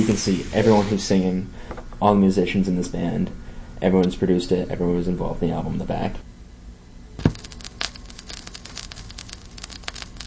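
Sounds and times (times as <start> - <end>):
soft hiss with crackles and pops: 0.0 - 1.2, 7.2 - 10.2
speech: 0.0 - 6.3.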